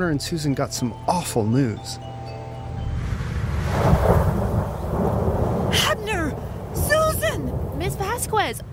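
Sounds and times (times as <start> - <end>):
speech: 0.0 - 2.1
deep thunder rumbling: 3.0 - 8.7
heavy rain hissing: 3.2 - 8.7.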